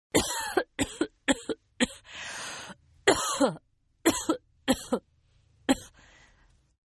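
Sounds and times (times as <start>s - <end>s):
woman coughing from sickness: 0.1s - 2.1s, 3.1s - 5.0s, 5.7s - 6.0s.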